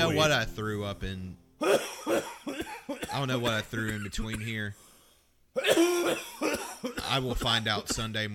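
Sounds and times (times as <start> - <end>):
speech: 0.1 - 2.2, 3.2 - 4.9, 6.8 - 8.3
person coughing: 1.6 - 4.6, 5.6 - 8.1.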